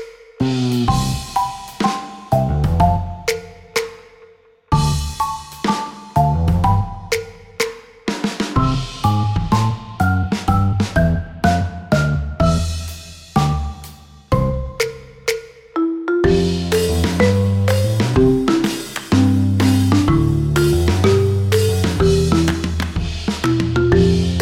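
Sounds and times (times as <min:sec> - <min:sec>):
cute band-style background music: 0:00.4 - 0:03.9, 0:04.7 - 0:07.5, 0:08.1 - 0:24.4.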